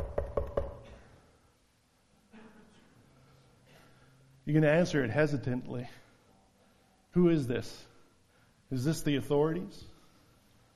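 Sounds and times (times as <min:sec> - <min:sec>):
knocking on a door: 0:00.0 - 0:00.8
speech: 0:04.5 - 0:06.0, 0:07.1 - 0:07.9, 0:08.7 - 0:09.9.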